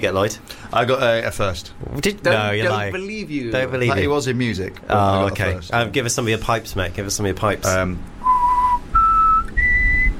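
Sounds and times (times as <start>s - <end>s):
speech: 0.0s - 8.1s
person whistling: 8.2s - 10.1s.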